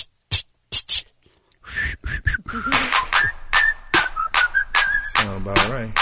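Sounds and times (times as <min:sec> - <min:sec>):
person whistling a wavering high-pitched tune: 0:01.6 - 0:05.3
sharp rhythmic percussive clicks and thumps: 0:02.6 - 0:06.0.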